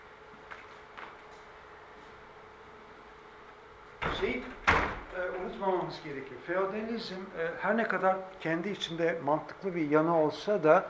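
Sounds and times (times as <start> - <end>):
room hum: 0.0 - 10.8
door opening with a loud rattling clatter: 4.0 - 5.2
speech: 4.2 - 10.8.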